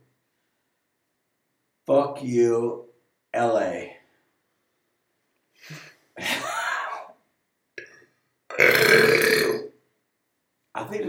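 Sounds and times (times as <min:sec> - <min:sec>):
speech: 0:01.9 - 0:04.0, 0:10.8 - 0:11.0
loud burps: 0:08.5 - 0:09.8.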